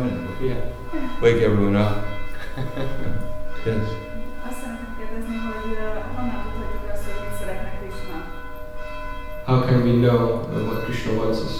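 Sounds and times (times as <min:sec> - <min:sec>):
speech: 0:00.0 - 0:04.1, 0:09.5 - 0:11.5
church bells ringing: 0:00.0 - 0:11.5
laughter: 0:02.3 - 0:03.4.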